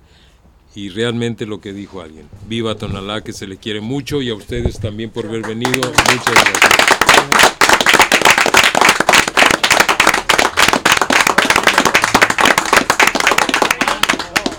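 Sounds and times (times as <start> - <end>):
speech: 0.7 - 7.0
audience applause at a live public event in Tonalá: 5.4 - 14.5.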